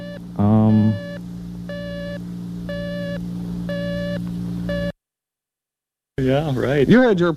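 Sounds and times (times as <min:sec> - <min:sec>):
constant low hum: 0:00.0 - 0:04.9
electronic beeping: 0:00.0 - 0:05.0
speech: 0:00.4 - 0:01.2, 0:06.2 - 0:07.3.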